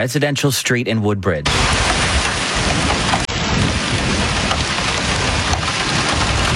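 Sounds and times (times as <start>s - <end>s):
speech: 0.0s - 2.9s
deep rumbling thunderstorm wind with gusts over 100 kilometers an hour: 1.5s - 6.5s
heavy torrential rain on a residential street in Woodbridge during a thunderstorm: 1.5s - 6.5s.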